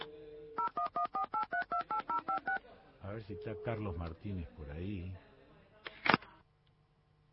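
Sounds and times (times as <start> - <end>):
telephone keypad dialing tones: 0.0 - 2.6
speech: 3.2 - 5.3.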